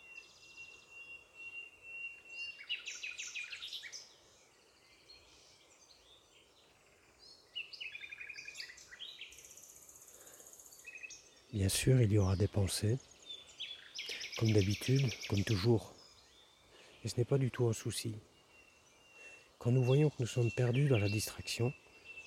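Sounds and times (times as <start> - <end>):
nightingale singing: 0.0 - 22.2
speech: 11.5 - 13.1, 14.4 - 16.0, 17.0 - 18.3, 19.6 - 21.8.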